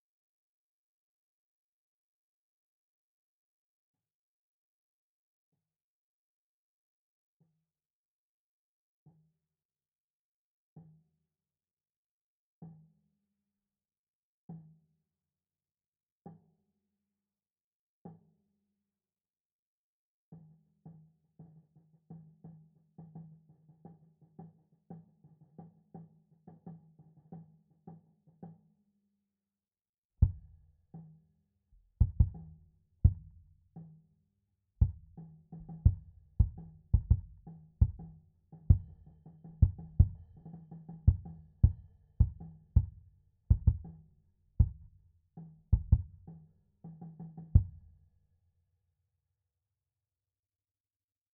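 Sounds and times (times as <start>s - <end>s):
low sub kick bass drum: 31.8s - 32.5s, 34.8s - 38.1s, 38.7s - 39.0s, 39.6s - 40.3s, 41.1s - 44.0s, 45.8s - 46.2s.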